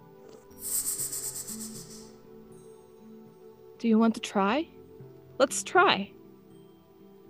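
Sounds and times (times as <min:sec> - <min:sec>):
person exhaling with a long hiss imitating a snake: 0:00.5 - 0:02.2
speech: 0:03.8 - 0:04.8, 0:05.4 - 0:06.2.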